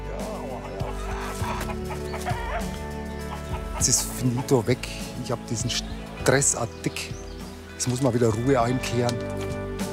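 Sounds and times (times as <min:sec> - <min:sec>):
several roosters clucking and squawking: 0:00.2 - 0:04.6
speech: 0:03.8 - 0:07.2, 0:07.8 - 0:09.7.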